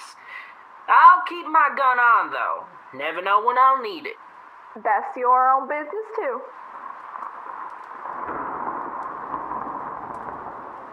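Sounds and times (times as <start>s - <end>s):
speech: 1.3s - 6.6s
thunderstorm: 6.7s - 10.9s.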